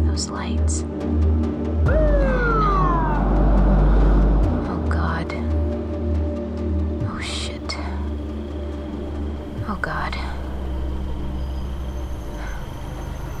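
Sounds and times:
speech: 0.2 - 1.4
police car siren in Slab City: 1.9 - 5.7
heavy engine rumble: 1.9 - 13.3.

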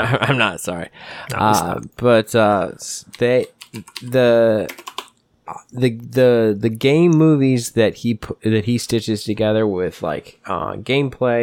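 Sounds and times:
speech: 0.1 - 11.4
computer keyboard typing: 3.1 - 5.2.

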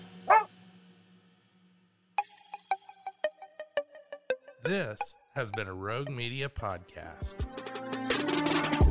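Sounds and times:
dog barking and yapping: 0.2 - 0.5
speech: 4.6 - 8.8.

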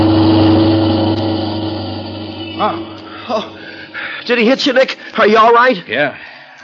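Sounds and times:
loud car engine droning: 0.0 - 5.2
short vocal outbursts: 0.4 - 4.3
speech: 2.6 - 3.5, 4.3 - 6.6.

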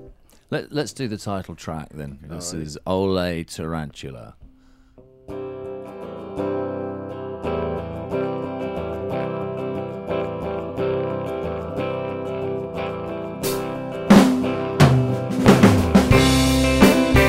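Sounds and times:
speech: 0.5 - 4.4
electric guitar through a tremolo pedal strumming chords in a studio: 5.0 - 17.2.

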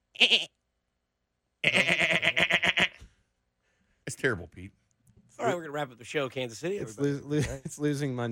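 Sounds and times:
person imitating goat bleat: 0.1 - 0.5, 1.6 - 3.0
speech: 0.2 - 0.6, 4.2 - 4.8, 5.4 - 8.3.

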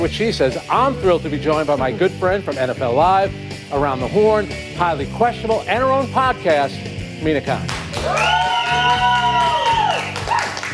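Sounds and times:
speech: 0.0 - 9.2
whoops and shouts: 8.0 - 10.6
audience cheering: 8.0 - 10.7.

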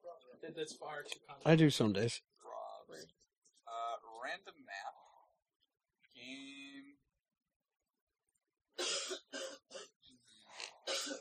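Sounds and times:
speech: 0.4 - 2.3, 2.9 - 3.3, 4.2 - 5.0
person coughing during a game session: 8.8 - 10.0, 10.8 - 11.1.

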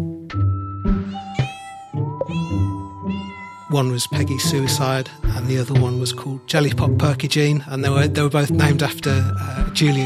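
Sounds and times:
kitten meowing: 1.0 - 3.8
speech: 3.7 - 10.0.

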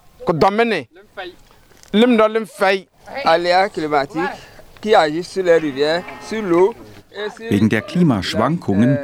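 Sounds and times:
speech: 0.2 - 9.0
cows mooing: 3.0 - 7.2.

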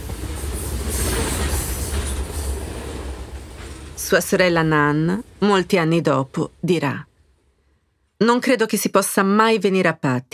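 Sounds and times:
train rumbling past on railway tracks of a local station: 0.0 - 7.6
speech: 4.0 - 7.1, 8.2 - 10.3.

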